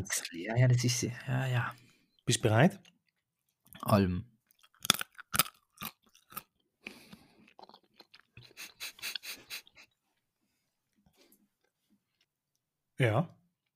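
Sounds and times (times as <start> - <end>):
speech: 0.0 - 3.0, 3.8 - 4.3, 13.0 - 13.4
crunching bites into a carrot: 4.5 - 8.6.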